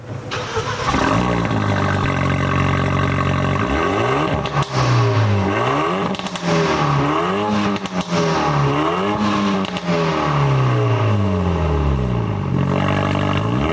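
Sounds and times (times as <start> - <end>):
sports car engine cranking to life: 0.3 - 6.6
stationary sports car engine revving hard: 0.3 - 13.7.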